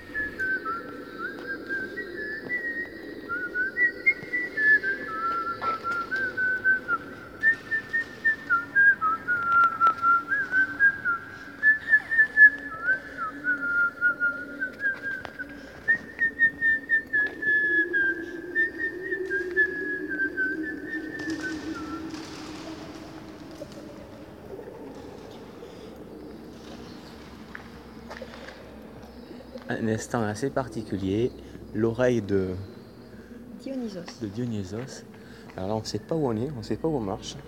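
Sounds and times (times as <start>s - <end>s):
person whistling a little Italian tune in a cave: 0.0s - 23.0s
speech: 29.8s - 32.7s, 33.7s - 37.4s.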